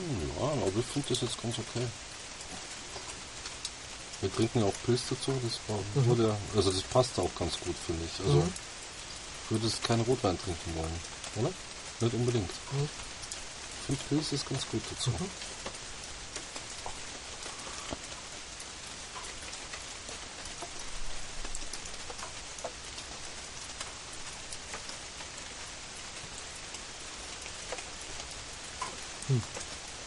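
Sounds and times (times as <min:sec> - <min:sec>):
steady rain falling: 0:00.0 - 0:30.0
speech: 0:00.5 - 0:02.2, 0:04.2 - 0:08.7, 0:09.5 - 0:13.1, 0:13.9 - 0:15.8, 0:29.3 - 0:29.6.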